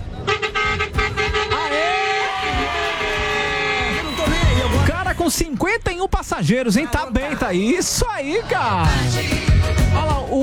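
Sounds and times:
loud bus horn honking: 0.0 - 4.9
speech: 5.2 - 10.4.

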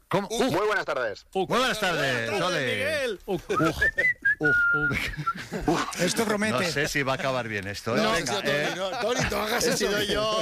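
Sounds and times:
speech: 0.1 - 10.3
laughter: 3.3 - 10.3
person whistling short bright notes: 3.6 - 5.4.

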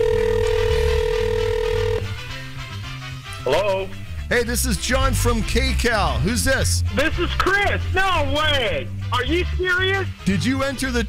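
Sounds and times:
electronic phone ringback tone: 0.0 - 2.2
speech: 3.5 - 11.0.

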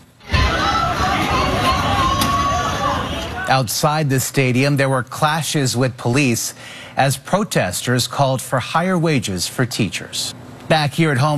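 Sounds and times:
huge home stadium crowd cheering after a goal in a World Cup match: 0.2 - 3.7
speech: 3.5 - 11.3.

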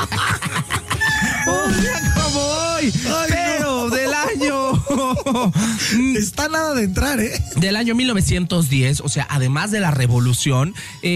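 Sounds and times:
laughter: 0.0 - 2.2, 3.0 - 6.2
rooster crowing: 0.9 - 2.4
speech: 5.4 - 11.1.

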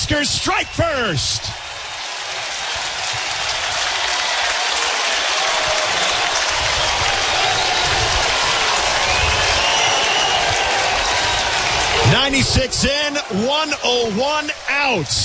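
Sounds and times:
large baseball stadium crowd roaring and cheering after a solo home run: 0.0 - 15.2
speech: 0.1 - 1.6, 12.3 - 15.2
stadium crowd applause: 0.1 - 15.2.

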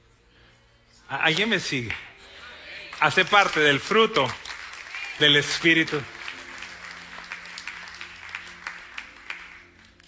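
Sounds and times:
speech: 1.1 - 2.1, 3.0 - 4.4, 5.2 - 6.2
crowd applauding: 2.8 - 10.0.

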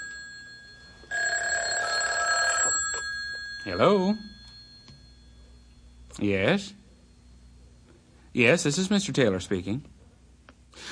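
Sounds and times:
telephone bell ringing: 0.0 - 5.6
speech: 3.6 - 4.3, 6.2 - 6.8, 8.4 - 9.9.

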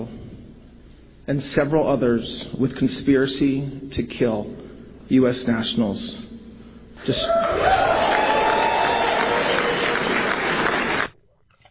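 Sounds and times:
speech: 1.3 - 6.3, 7.0 - 8.0
whoops: 7.1 - 10.4
loud crowd cheering and applauding: 7.4 - 11.1.

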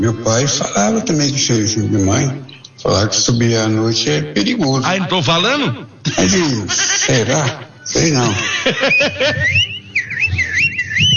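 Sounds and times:
speech: 0.0 - 11.1
laughter: 6.0 - 9.8
person whistling a warbling sliding tone: 9.1 - 11.1.

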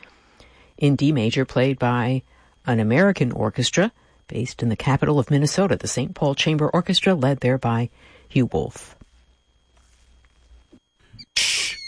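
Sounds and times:
speech: 0.8 - 9.0
killdeer call: 11.2 - 11.8.

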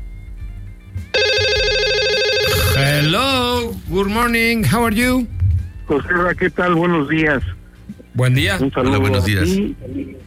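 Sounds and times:
telephone ringtone for an incoming call: 1.2 - 3.2
speech: 3.9 - 7.6, 8.2 - 10.2.

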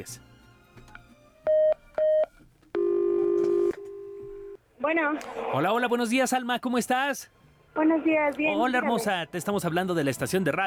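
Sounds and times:
speech: 0.0 - 0.3, 4.8 - 10.6
touch-tone beeps of a phone number being dialed on a keypad: 1.5 - 4.6.

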